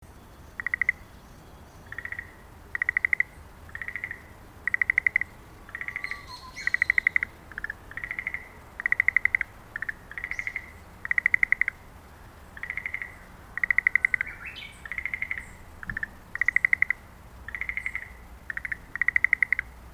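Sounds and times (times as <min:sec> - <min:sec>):
green frog: 0:00.6 - 0:01.1, 0:01.8 - 0:19.9.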